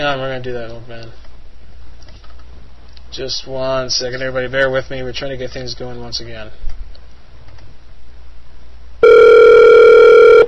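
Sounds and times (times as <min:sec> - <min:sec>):
speech: 0:00.0 - 0:01.2, 0:03.2 - 0:06.7
telephone ringing tone on an incoming call: 0:09.0 - 0:10.4.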